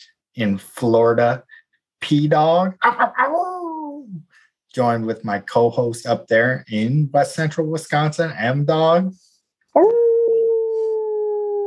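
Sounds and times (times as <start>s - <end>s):
speech: 0.0s - 10.0s
human voice imitating a dog howling at the moon: 9.8s - 11.6s.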